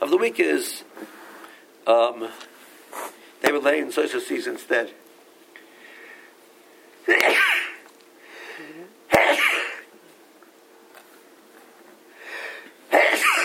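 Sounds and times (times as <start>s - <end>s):
speech: 0.1s - 1.2s, 1.8s - 2.5s, 3.4s - 5.0s, 7.1s - 7.4s
person sneezing: 7.1s - 7.8s, 9.1s - 9.9s, 12.9s - 13.4s.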